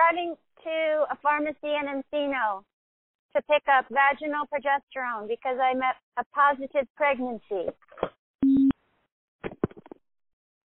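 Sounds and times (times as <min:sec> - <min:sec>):
speech: 0:00.1 - 0:02.7, 0:03.3 - 0:08.5
short electronic phone beep: 0:08.4 - 0:08.8.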